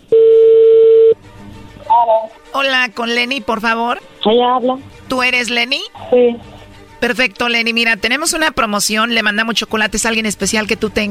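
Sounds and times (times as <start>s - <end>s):
telephone ringing tone as a call is dialed: 0.1s - 1.2s
speech: 2.6s - 11.0s.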